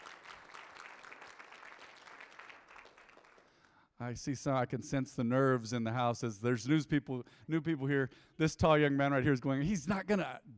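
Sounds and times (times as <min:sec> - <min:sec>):
church audience applause: 0:00.0 - 0:03.6
speech: 0:04.0 - 0:10.5.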